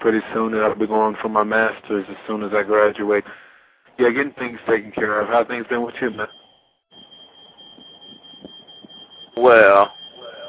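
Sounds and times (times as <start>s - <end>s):
speech: 0.0s - 6.4s, 9.4s - 10.0s
shrill high-pitched fire alarm: 6.1s - 10.4s.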